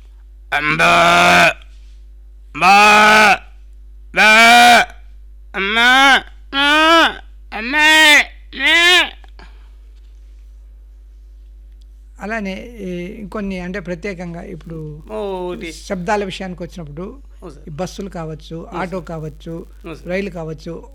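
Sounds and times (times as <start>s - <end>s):
speech: 0.5s - 1.6s, 12.4s - 20.9s
human voice imitating a cow or calf mooing: 0.5s - 1.7s, 2.6s - 3.5s, 4.2s - 5.0s, 5.6s - 9.3s.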